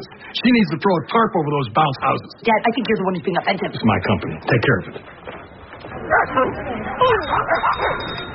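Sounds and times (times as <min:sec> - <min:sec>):
speech: 0:00.4 - 0:05.3, 0:06.3 - 0:08.2
several dogs barking and yipping at a dog park: 0:06.0 - 0:08.3.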